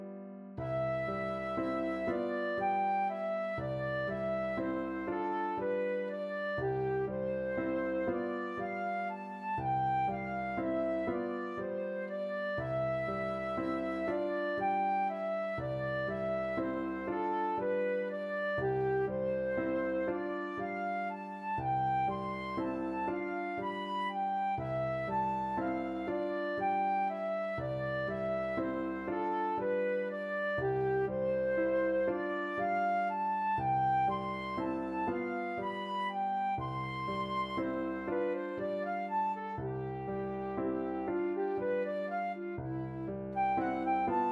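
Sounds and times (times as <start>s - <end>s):
flute playing a berceuse: 0.6s - 44.2s.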